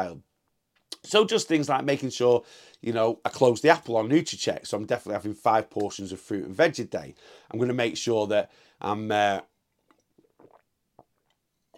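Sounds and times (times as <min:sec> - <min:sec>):
speech: 0:00.0 - 0:00.3, 0:01.0 - 0:09.5
person drinking water with sips and swallows: 0:09.4 - 0:11.7
soft mouth sounds: 0:09.4 - 0:11.7.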